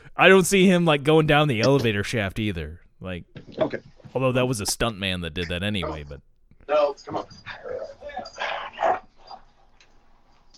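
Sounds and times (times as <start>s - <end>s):
speech: 0.2s - 9.0s
dog whimpering, yipping and yelping: 6.8s - 9.5s.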